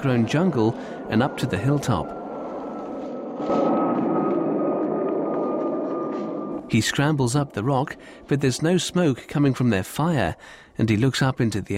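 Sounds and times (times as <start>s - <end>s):
speech: 0.0s - 2.2s, 3.4s - 3.8s, 6.7s - 11.7s
airplane flying past over an overgrown jungle hilltop: 0.0s - 8.3s.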